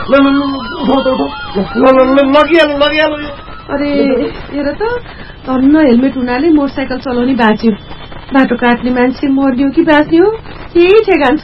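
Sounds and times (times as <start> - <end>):
ambulance siren wailing at a road accident scene on a street: 0.0 - 5.1
speech: 0.1 - 11.4.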